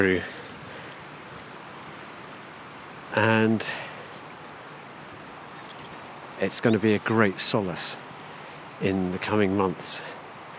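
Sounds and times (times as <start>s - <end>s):
speech: 0.0s - 0.4s, 3.1s - 3.9s, 6.4s - 8.0s, 8.8s - 10.2s
flowing river water: 0.0s - 10.5s.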